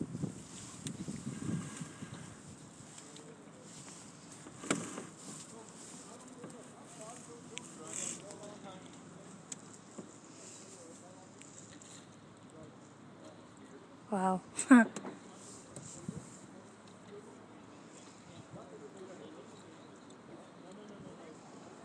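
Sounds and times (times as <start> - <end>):
steady wind rushing past the microphone on a small sailing boat: 0.0 - 2.8
faint indistinct voices murmuring: 0.0 - 21.8
speech: 14.2 - 15.1.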